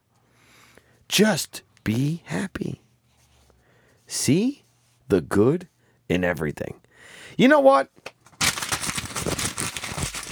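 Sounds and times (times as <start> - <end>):
speech: 1.2 - 2.8, 4.1 - 6.8, 7.4 - 8.0
paper being ripped up: 8.3 - 10.3.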